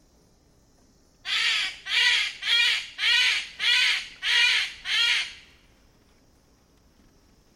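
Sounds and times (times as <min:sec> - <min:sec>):
Parotia sefilata bird of paradise calling: 0:01.3 - 0:05.5.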